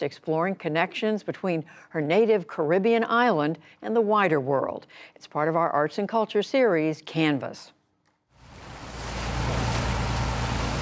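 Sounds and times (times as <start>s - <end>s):
speech: 0.0s - 7.8s
boat engine rumbling crossing harbor water: 8.4s - 10.7s
rushing water with spray and hull noise: 8.4s - 10.7s
wind: 8.4s - 10.7s.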